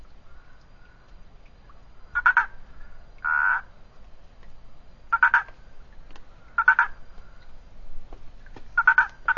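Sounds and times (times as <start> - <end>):
Boana prasina treefrog croaking: 2.1 - 3.8, 5.1 - 5.6, 6.4 - 7.0, 8.8 - 9.3.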